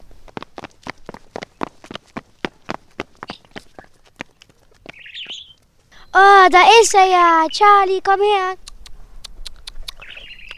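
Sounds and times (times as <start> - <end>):
quick footsteps: 0.0 - 6.0
pet bird chirping: 3.2 - 6.4, 9.6 - 10.5
speech: 6.2 - 8.6.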